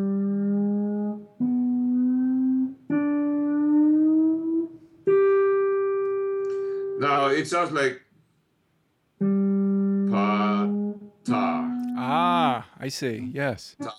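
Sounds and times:
guitar notes sliding up the fifth string from the third fret to the seventh fret: 0:00.0 - 0:07.2, 0:09.2 - 0:12.5
speech: 0:07.3 - 0:08.0, 0:12.8 - 0:13.9.

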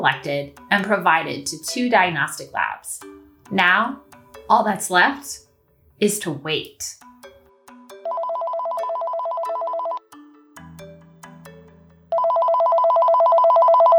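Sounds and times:
speech: 0:00.0 - 0:05.4, 0:06.0 - 0:07.1
telephone ringing in long electronic bursts: 0:08.0 - 0:10.1, 0:12.1 - 0:13.9.

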